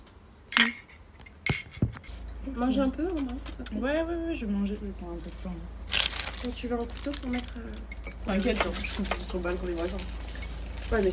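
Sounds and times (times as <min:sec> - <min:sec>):
glasses clinking in a toast at a brunch: 0:00.5 - 0:02.1, 0:07.3 - 0:09.0
light clinks and knocks of tableware: 0:00.5 - 0:02.1
speech: 0:02.5 - 0:05.8, 0:06.4 - 0:10.2, 0:10.9 - 0:11.1.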